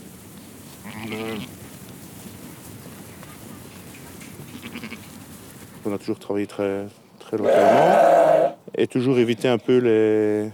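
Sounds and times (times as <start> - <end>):
rustling farm noise: 0.0 - 10.5
sheep bleating: 0.8 - 1.5, 4.5 - 5.0, 7.4 - 8.6
speech: 1.0 - 1.6, 5.9 - 10.5.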